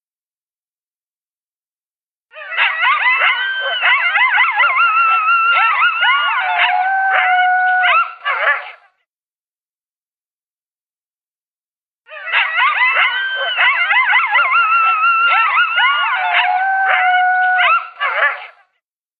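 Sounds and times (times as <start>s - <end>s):
coyote howling and yipping: 2.3s - 8.8s, 12.1s - 18.6s.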